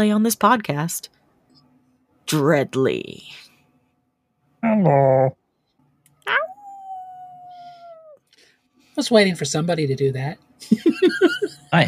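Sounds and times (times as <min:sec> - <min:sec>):
speech: 0:00.0 - 0:01.2, 0:02.3 - 0:03.5, 0:04.6 - 0:05.4, 0:06.3 - 0:06.5, 0:09.0 - 0:11.8
person imitating a dog's yelp and howl: 0:06.3 - 0:08.2
laughter: 0:10.6 - 0:11.8.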